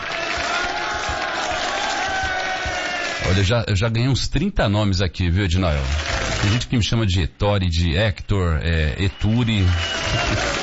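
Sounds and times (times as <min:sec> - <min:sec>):
crowd cheering and applauding: 0:00.0 - 0:03.4, 0:05.8 - 0:06.7, 0:08.9 - 0:10.6
soft rhythmic low thumps: 0:00.4 - 0:02.9
speech: 0:03.4 - 0:10.6.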